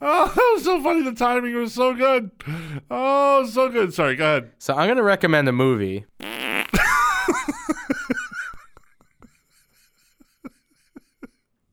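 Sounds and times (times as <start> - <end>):
speech: 0.7 - 6.3
fart: 6.2 - 7.0
laughter: 6.8 - 11.4.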